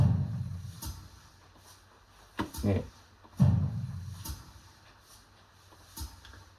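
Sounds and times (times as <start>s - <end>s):
heavy deep booming thud effect with reverb: 0.0s - 0.7s, 3.4s - 4.2s
faint short low thumps: 0.0s - 1.2s, 2.5s - 4.7s
speech: 2.6s - 3.0s.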